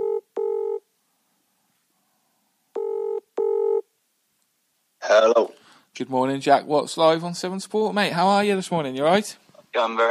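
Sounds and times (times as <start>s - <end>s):
telephone ringing-out tone: 0.0s - 0.8s, 2.8s - 3.8s
speech: 5.2s - 10.1s.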